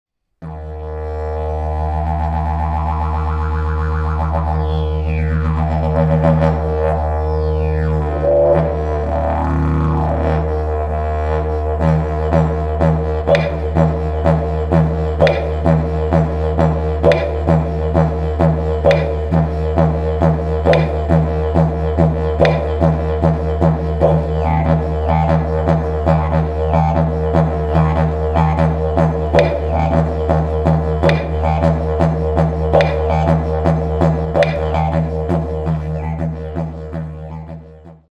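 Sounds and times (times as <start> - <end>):
didgeridoo: 0.4 - 38.0.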